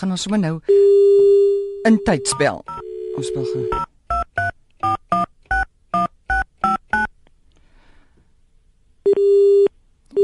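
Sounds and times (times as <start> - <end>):
speech: 0.0 - 3.9
telephone busy signal after a caller is lost: 0.7 - 3.8
telephone keypad dialing tones: 0.7 - 7.1.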